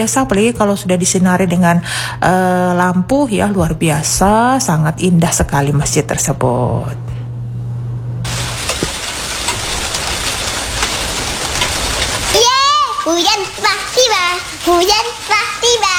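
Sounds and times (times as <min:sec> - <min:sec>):
speech: 0:00.0 - 0:07.1
steady rain falling: 0:08.3 - 0:15.9.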